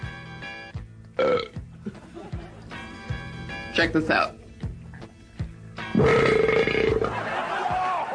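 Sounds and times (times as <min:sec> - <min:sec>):
loud drawn-out belch during a belching contest: 0:01.2 - 0:01.6, 0:05.9 - 0:07.3
short burps: 0:01.2 - 0:01.6, 0:05.9 - 0:07.1
laughter: 0:01.7 - 0:03.0, 0:06.9 - 0:08.1
speech: 0:03.8 - 0:04.4.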